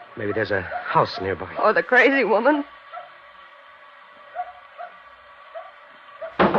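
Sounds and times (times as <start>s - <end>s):
small dog yapping and barking: 0.0s - 1.4s, 2.9s - 3.2s, 4.3s - 6.4s
speech: 0.2s - 2.8s.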